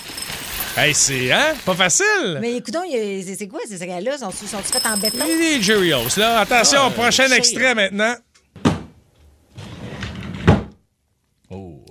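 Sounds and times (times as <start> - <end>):
speech: 0.8 - 8.3
drawer scraping and shutting: 8.6 - 10.8.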